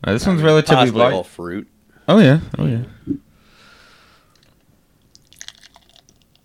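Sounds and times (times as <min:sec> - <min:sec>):
speech: 0:00.0 - 0:03.3
light fizzy crackles of a drink: 0:04.3 - 0:06.4
drink pouring into a glass: 0:04.4 - 0:06.4
drips: 0:04.4 - 0:06.4.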